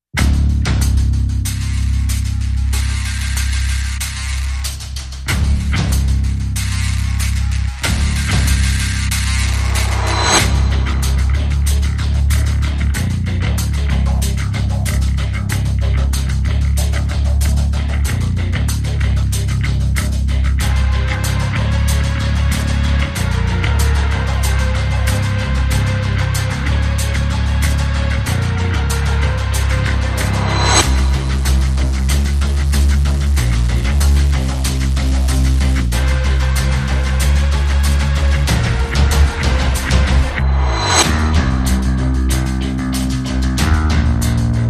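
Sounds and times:
bass: 0.0s - 44.6s
percussion: 0.1s - 44.6s.

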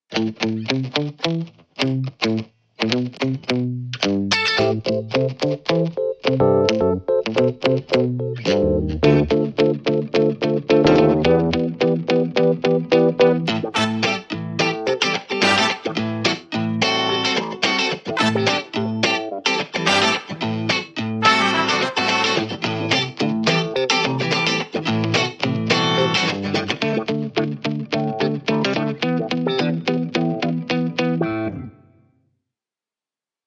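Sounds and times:
guitar: 0.1s - 32.1s
keys: 4.6s - 31.8s
brass instruments: 13.7s - 14.4s, 15.3s - 16.2s, 18.1s - 19.0s, 19.8s - 22.7s.

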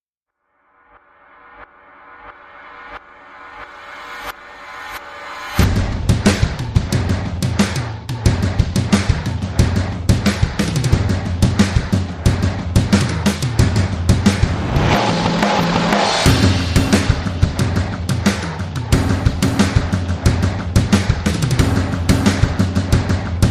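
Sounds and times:
drum kit: 4.9s - 23.4s.

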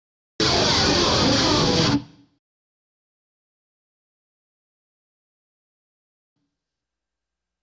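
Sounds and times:
solo guitar riff: 0.4s - 2.1s.

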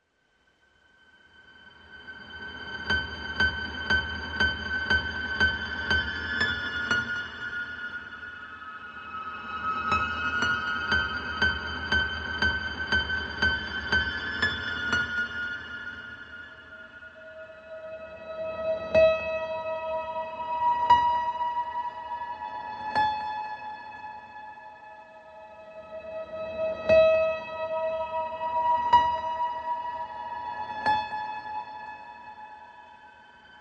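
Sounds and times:
piano: 0.5s - 33.5s.

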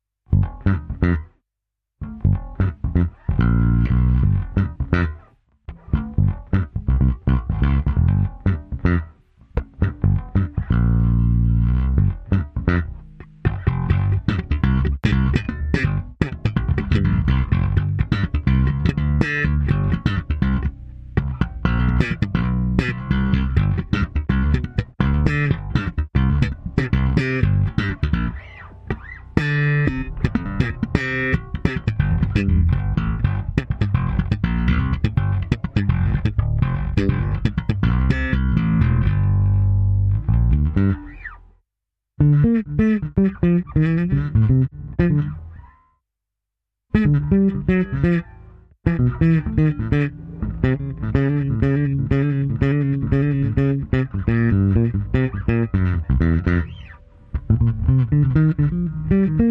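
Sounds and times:
solo bass groove: 0.0s - 1.4s, 2.0s - 41.6s, 42.2s - 46.0s, 46.9s - 59.4s.

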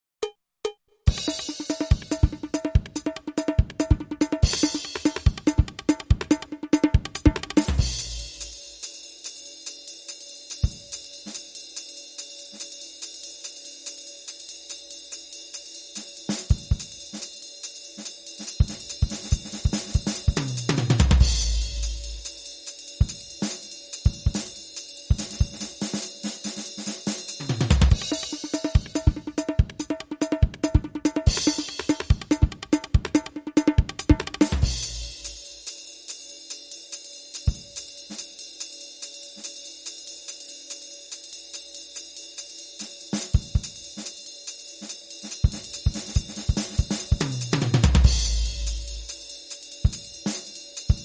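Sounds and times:
stereo jazz drum kit loop: 1.1s - 51.0s.

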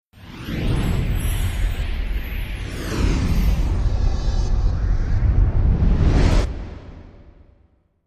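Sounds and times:
major whoosh: 0.2s - 7.8s.

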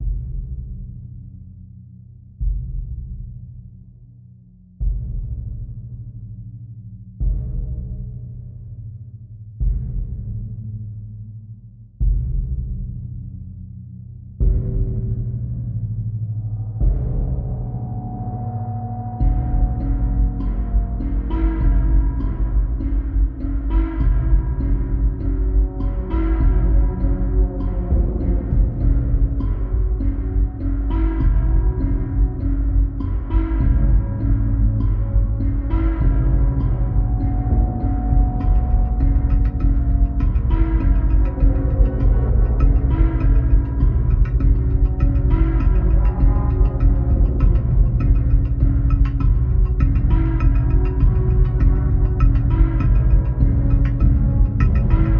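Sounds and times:
drums: 0.0s - 1.4s, 2.3s - 3.9s, 4.7s - 11.2s, 12.0s - 13.6s, 14.3s - 55.1s
bass: 0.0s - 55.1s.

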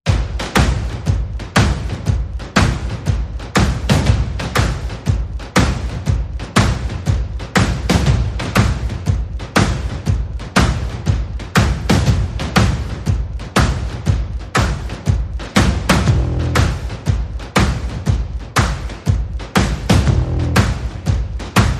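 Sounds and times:
percussion in a shuffle groove: 0.1s - 21.7s
bass in a shuffle groove: 15.9s - 16.8s, 19.9s - 20.9s, 21.6s - 21.7s.

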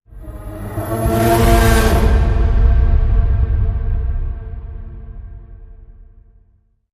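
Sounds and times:
scream: 0.1s - 5.4s
whoosh: 0.1s - 6.0s.

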